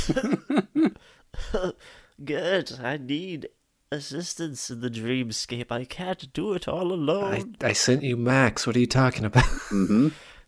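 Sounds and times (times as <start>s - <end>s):
voice imitating coughing up blood: 0.0s - 0.5s, 9.6s - 10.2s
speech: 0.0s - 0.9s, 1.5s - 10.3s.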